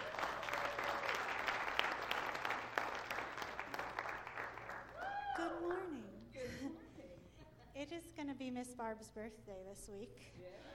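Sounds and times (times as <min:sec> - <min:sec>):
church audience applauding: 0:00.0 - 0:05.6
speech: 0:08.0 - 0:10.7.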